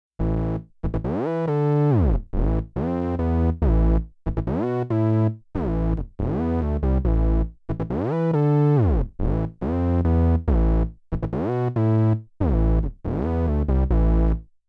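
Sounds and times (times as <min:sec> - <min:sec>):
Moog One synthesizer bass: 0:00.2 - 0:14.5.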